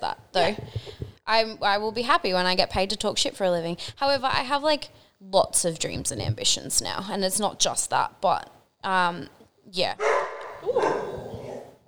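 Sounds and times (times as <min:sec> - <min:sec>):
speech: 0:00.0 - 0:10.9
dog barking: 0:10.0 - 0:11.8.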